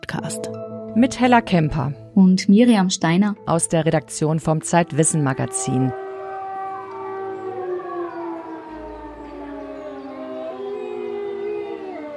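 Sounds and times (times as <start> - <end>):
speech: 0.1 - 6.0
pack of wolves howling: 4.6 - 12.1
fire siren wailing in Austria: 4.8 - 12.1.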